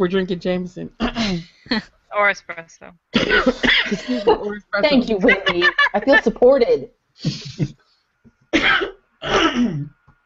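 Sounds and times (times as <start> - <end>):
speech: 0.0 - 7.8, 8.5 - 10.0
loud coughing fit with harsh hacking coughs: 3.2 - 4.2, 8.6 - 10.0
laughter: 3.5 - 6.4.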